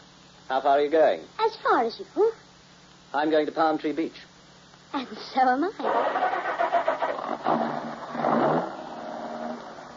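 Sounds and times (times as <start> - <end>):
speech: 0.5 - 2.4, 3.1 - 4.3, 4.9 - 6.4
car engine cranking, starting and idling: 5.8 - 9.9.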